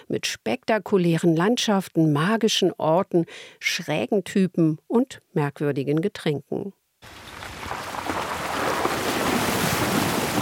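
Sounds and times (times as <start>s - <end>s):
speech: 0.1s - 7.2s
off-road vehicle pushing through creek water: 7.2s - 10.3s.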